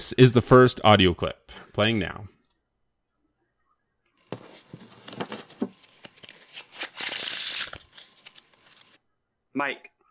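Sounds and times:
speech: 0.1s - 2.4s, 9.6s - 9.9s
playing cards shuffling: 4.3s - 9.0s.

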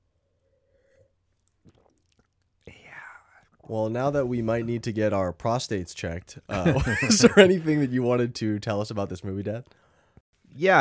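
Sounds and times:
soft mouth and swallowing noises sipping a Paso Robles pour: 1.5s - 2.4s
speech: 3.7s - 9.8s, 10.6s - 10.7s
laughter: 6.5s - 8.0s.

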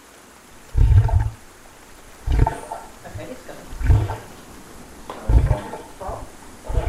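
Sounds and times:
wooden leg dragged out of water with heavy thuds and scraping: 0.8s - 1.4s, 2.1s - 6.8s
faint knocks: 2.2s - 6.8s.

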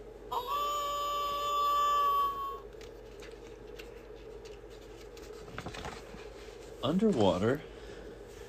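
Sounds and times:
wolf howling: 0.3s - 2.6s
speech: 6.8s - 7.7s.

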